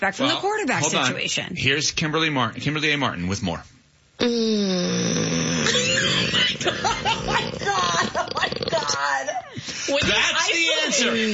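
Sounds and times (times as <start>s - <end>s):
speech: 0.0s - 11.3s
loud snoring sound effect: 4.2s - 9.0s.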